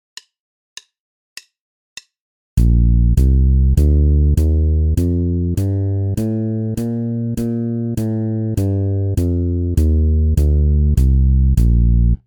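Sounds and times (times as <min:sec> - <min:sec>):
bass playing a B-flat major scale: 0:02.6 - 0:12.2.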